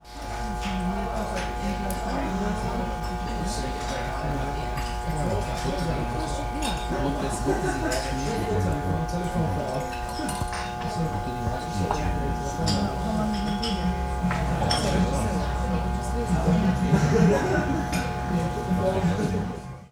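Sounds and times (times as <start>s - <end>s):
restaurant hum: 0.0s - 19.9s
laughter: 3.9s - 13.4s, 14.0s - 19.7s.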